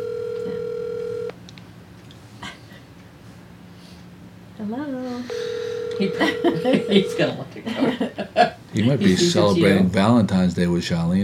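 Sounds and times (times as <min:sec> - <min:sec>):
steady electronic phone line ring tone: 0:00.0 - 0:01.3, 0:05.3 - 0:07.4
speech: 0:04.6 - 0:11.2
laughter: 0:06.1 - 0:09.3.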